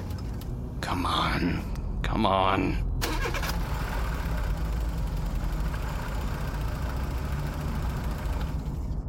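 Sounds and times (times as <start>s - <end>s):
old worn-out car engine cranking and failing to start at street level: 0.0s - 0.6s, 3.0s - 9.0s
speech: 0.9s - 3.4s.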